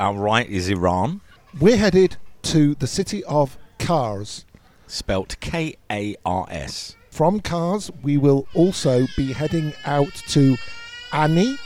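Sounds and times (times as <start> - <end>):
speech: 0.0 - 11.6
baby crying: 8.4 - 11.6.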